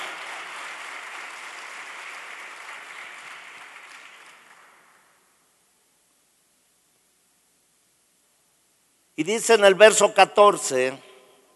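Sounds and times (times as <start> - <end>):
audience applauding: 0.0 - 5.2
speech: 9.2 - 11.1.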